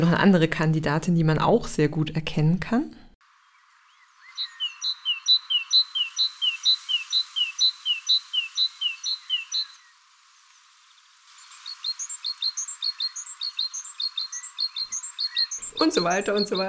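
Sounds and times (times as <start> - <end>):
speech: 0.0 - 3.0, 15.8 - 16.6
great tit singing a two-note phrase: 4.2 - 9.8, 11.5 - 16.6.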